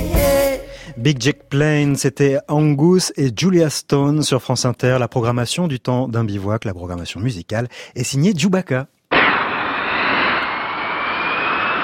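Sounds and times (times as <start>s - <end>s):
speech: 0.9s - 9.0s
Mirage IIIC jet roaring past during a test flight at Istres: 9.1s - 11.8s.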